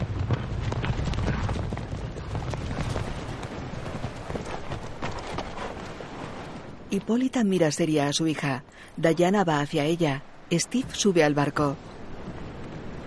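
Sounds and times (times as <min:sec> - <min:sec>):
hooves of several horses with riders clip-clopping: 0:00.0 - 0:06.6
speech: 0:06.9 - 0:11.9.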